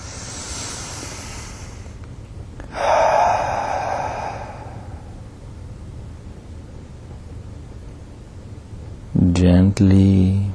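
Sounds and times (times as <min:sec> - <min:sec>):
deep breath drawn in during a guided relaxation exercise: 0:00.0 - 0:02.0, 0:02.7 - 0:05.2
speech: 0:09.6 - 0:10.5.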